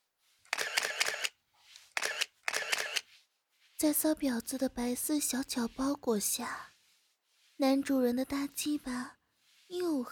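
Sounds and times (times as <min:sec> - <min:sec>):
camera shutter firing while photos are taken: 0:00.5 - 0:03.0
speech: 0:03.8 - 0:06.7, 0:07.6 - 0:10.0.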